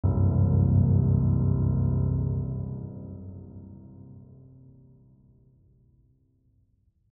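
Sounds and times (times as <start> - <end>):
low chord: 0.0 - 5.5.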